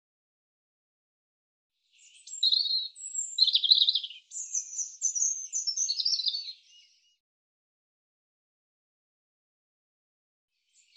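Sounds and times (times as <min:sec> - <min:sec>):
European robin singing high sibilant whistles, warbles and trills: 0:01.9 - 0:07.2, 0:10.7 - 0:10.9.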